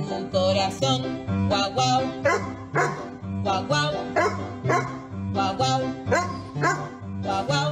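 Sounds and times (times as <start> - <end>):
loud continuous music: 0.7 - 7.7
dog barking in rhythm to music: 2.2 - 3.1, 4.2 - 5.1, 6.1 - 7.0.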